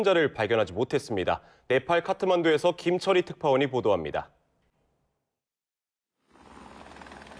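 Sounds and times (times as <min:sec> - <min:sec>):
speech: 0:00.0 - 0:04.4
helicopter rotor thrumming: 0:06.4 - 0:07.3.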